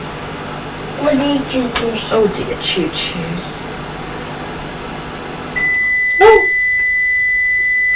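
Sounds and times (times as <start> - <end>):
microwave oven running hum while warming bread: 0.0 - 7.9
speech: 1.1 - 3.8
microwave oven finishing beep after warming bread: 5.5 - 7.9.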